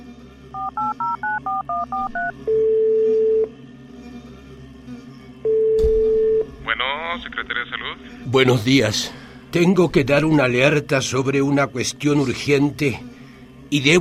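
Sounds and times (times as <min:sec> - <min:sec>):
quiet hum: 0:00.0 - 0:13.9
long steady phone line ringing tones: 0:00.6 - 0:03.5, 0:05.4 - 0:06.5
speech: 0:00.7 - 0:03.6, 0:06.8 - 0:13.1, 0:13.7 - 0:13.9.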